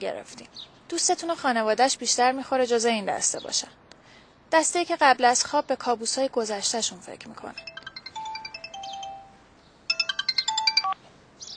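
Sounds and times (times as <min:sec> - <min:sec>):
speech: 0:00.0 - 0:03.9, 0:04.5 - 0:07.9
telephone ringing with a melodic electronic ringtone: 0:07.6 - 0:11.0.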